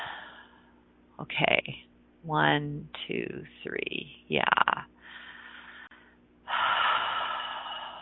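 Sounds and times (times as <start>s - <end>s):
deep breathing during a guided relaxation exercise: 0.0s - 0.8s, 5.0s - 8.0s
speech: 1.2s - 4.9s.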